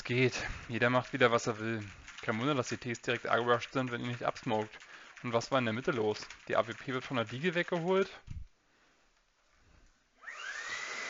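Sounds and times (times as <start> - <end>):
speech: 0.1 - 8.4
vacuum cleaner motor running: 10.2 - 11.0.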